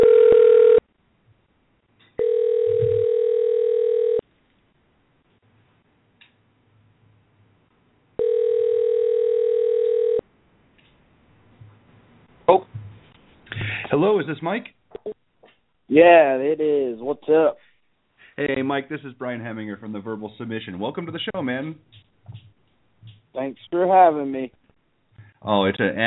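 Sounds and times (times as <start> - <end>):
steady electronic telephone line tone while a call is dialed out: 0.0 - 0.8, 2.2 - 4.2, 8.2 - 10.2
speech: 14.0 - 14.8, 16.0 - 17.6, 18.4 - 22.0, 23.4 - 24.6, 25.4 - 26.0.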